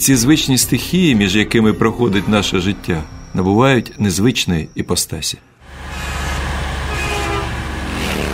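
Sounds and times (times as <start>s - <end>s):
speech: 0.0s - 5.5s
road noise: 0.0s - 8.3s
small bus engine droning downhill on the Jerusalem–Jericho road: 2.2s - 8.3s
small bus horn toot: 6.8s - 7.6s.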